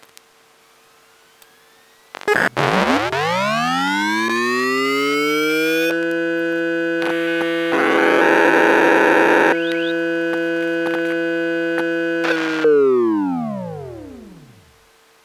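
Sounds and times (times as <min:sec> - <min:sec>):
hard drive starting and stopping: 0:01.4 - 0:14.9.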